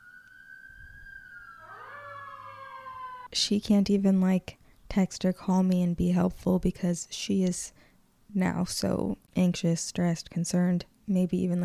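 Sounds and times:
emergency vehicle sirens wailing outside: 0.0 - 3.3
speech: 3.3 - 11.6.

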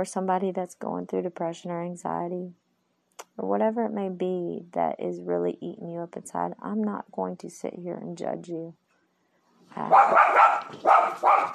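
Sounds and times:
speech: 0.0 - 2.6, 3.3 - 8.8, 9.7 - 11.5
dogs barking: 9.8 - 11.5.

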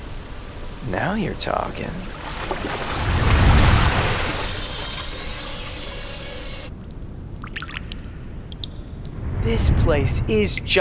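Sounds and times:
rushing waterfall: 0.0 - 5.5
speech: 0.8 - 3.0, 9.5 - 10.7.

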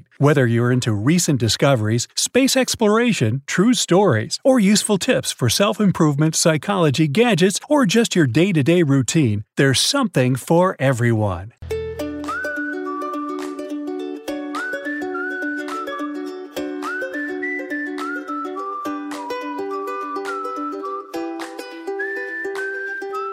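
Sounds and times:
speech: 0.2 - 11.8
person whistling a lively melody: 12.0 - 23.3.

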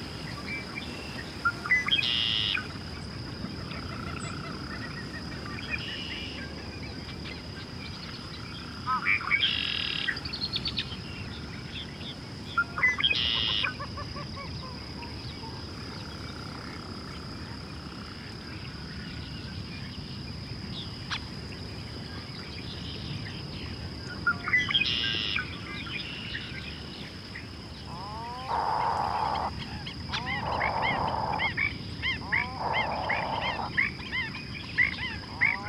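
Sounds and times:
constant high insect-like whine: 0.0 - 13.8, 14.6 - 35.6
least bittern giving low strained groaning calls: 27.9 - 29.5, 30.1 - 33.8.

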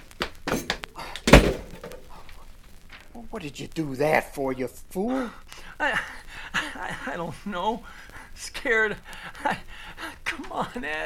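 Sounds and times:
rustling movements: 0.0 - 3.1
door slamming shut: 0.5 - 2.0
speech: 3.3 - 9.7, 10.6 - 11.0.

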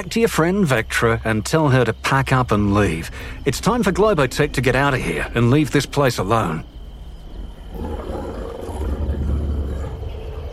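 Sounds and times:
speech: 0.0 - 6.8
two giant night wolves growling: 7.5 - 10.5.

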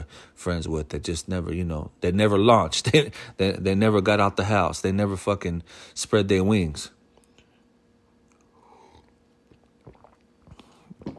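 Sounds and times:
speech: 0.1 - 7.0
soft slurps and gulps: 8.2 - 11.1
person sipping hot coffee: 8.3 - 11.1.

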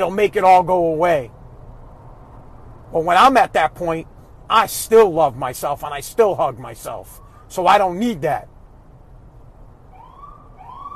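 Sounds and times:
speech: 0.0 - 1.4, 2.9 - 8.5
low rumble: 0.0 - 10.8
ambulance siren wailing outside: 9.9 - 10.9.

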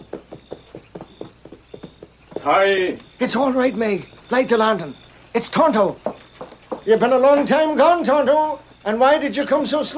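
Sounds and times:
lone horse walking with hooves clip-clopping: 0.0 - 4.4, 6.0 - 7.1
speech: 2.4 - 6.1, 6.8 - 9.9.

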